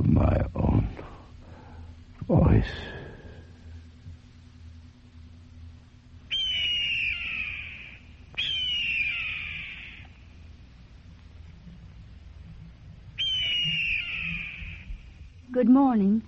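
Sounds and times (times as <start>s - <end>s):
steady low rumble: 0.0s - 16.2s
American eagle screaming: 6.3s - 10.2s, 13.2s - 15.2s
speech: 15.6s - 16.2s.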